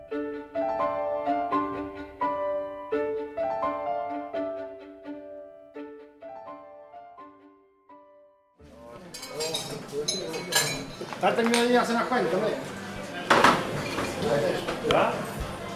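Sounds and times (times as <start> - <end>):
melodic music: 0.0 - 8.6
glasses and dishes clinking in a bar and restaurant: 9.0 - 11.8, 13.3 - 14.4
overlapping chatter in a bar and restaurant: 11.0 - 15.7.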